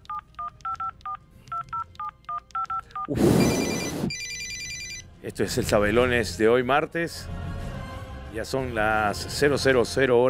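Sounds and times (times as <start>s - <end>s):
telephone number dialed on a touch-tone keypad: 0.0s - 5.0s
speech: 3.1s - 3.7s, 5.2s - 7.4s, 8.4s - 10.2s.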